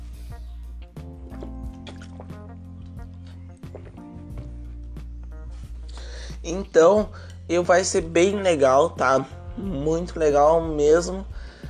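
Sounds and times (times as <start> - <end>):
person sipping water: 0.1 - 4.2
small wet gulps: 0.6 - 4.1
speech: 6.4 - 11.3.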